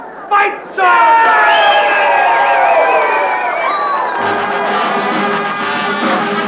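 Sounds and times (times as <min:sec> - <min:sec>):
individual shouts and yells in a crowd: 0:00.3 - 0:06.3
speech: 0:00.4 - 0:01.2
large crowd cheering and whooping at a campus bonfire rally: 0:01.1 - 0:06.2.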